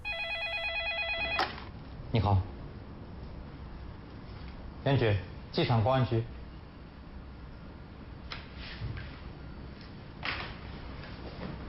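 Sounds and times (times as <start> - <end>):
telephone ringing with a warbling electronic trill: 0.0 - 1.7
speech: 2.1 - 2.6, 4.8 - 6.4.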